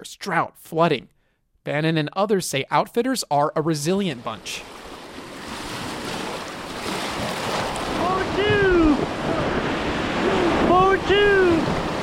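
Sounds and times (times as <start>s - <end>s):
speech: 0.0s - 4.8s
rushing river rapids during rafting: 4.8s - 12.0s.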